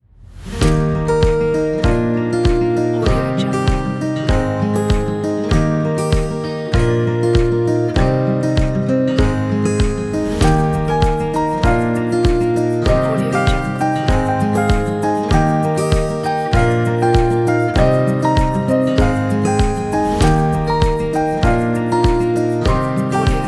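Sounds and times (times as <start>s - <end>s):
inspiring acoustic guitar music: 0.4s - 23.4s.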